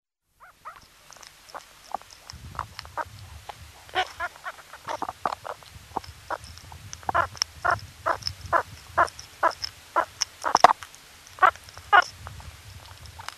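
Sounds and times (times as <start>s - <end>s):
meerkat chirping calls: 0.4s - 3.2s, 3.8s - 6.4s, 7.0s - 10.8s, 11.4s - 12.1s.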